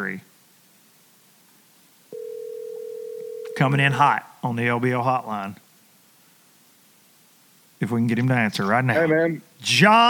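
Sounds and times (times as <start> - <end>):
speech: 0.0 - 0.3, 3.6 - 5.6, 7.8 - 10.0
soft hiss: 0.0 - 10.0
telephone dial tone while calling: 2.1 - 3.6.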